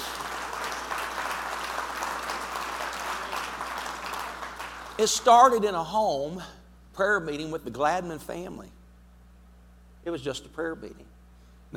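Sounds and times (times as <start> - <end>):
room full of people applauding: 0.0 - 5.6
speech: 5.0 - 8.8, 10.0 - 11.7.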